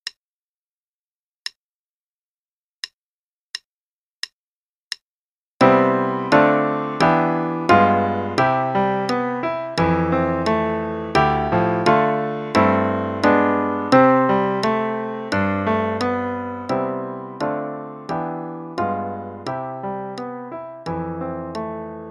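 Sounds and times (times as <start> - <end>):
left-hand C scale played in both parts: 5.6 - 22.1.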